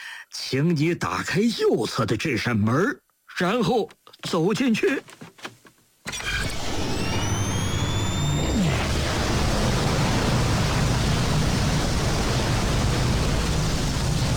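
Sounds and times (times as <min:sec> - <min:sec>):
speech: 0:00.1 - 0:05.5
wormhole opening sound effect roaring rush with whistling tones: 0:06.5 - 0:14.3.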